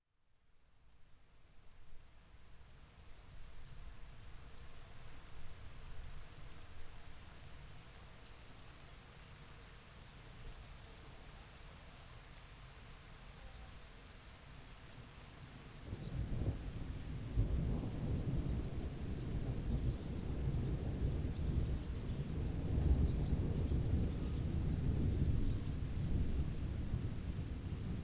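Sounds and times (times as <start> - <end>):
light rain: 0.2 - 28.0
distant thunderstorm: 16.0 - 28.0.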